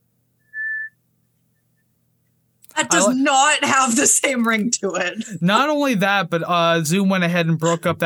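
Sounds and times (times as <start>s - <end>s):
single short steady whistled note blown through the lips: 0.4s - 1.0s
speech: 2.8s - 8.0s.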